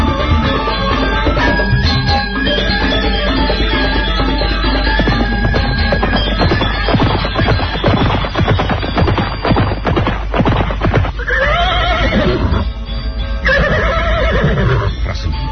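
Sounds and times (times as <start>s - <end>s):
horse hooves clip-clopping in a town square: 0.1s - 12.6s
horse neighing in a town square: 11.2s - 12.6s, 13.4s - 15.3s.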